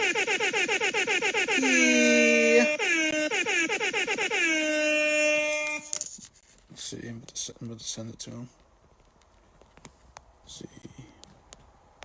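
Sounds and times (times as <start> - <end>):
air horn sound effect blasts: 0.0 - 6.0
speech: 7.5 - 8.6.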